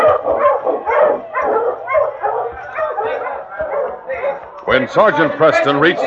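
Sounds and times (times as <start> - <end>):
pack of husky sled dogs barking and yipping: 0.0 - 4.6
speech: 4.7 - 6.0.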